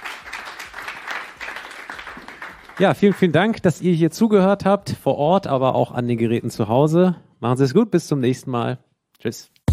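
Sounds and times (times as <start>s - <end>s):
audience applause for a guest at a live event: 0.0s - 3.6s
speech: 2.8s - 9.6s.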